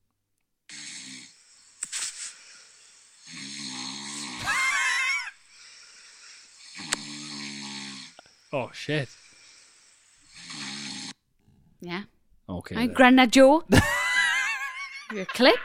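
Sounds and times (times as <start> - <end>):
person snoring loudly at night: 0.7 - 1.6, 3.1 - 11.2
speech: 8.5 - 9.2, 11.8 - 14.0, 15.1 - 15.6.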